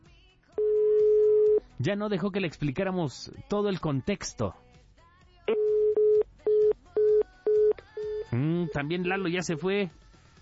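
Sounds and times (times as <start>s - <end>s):
steady electronic telephone tone after a call is hung up: 0.6s - 1.6s, 5.5s - 8.8s
speech: 1.8s - 4.6s, 8.3s - 10.0s.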